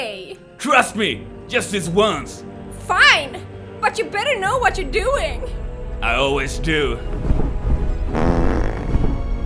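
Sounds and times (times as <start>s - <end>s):
speech: 0.6s - 7.2s
long loud rumbling fart: 8.0s - 9.3s.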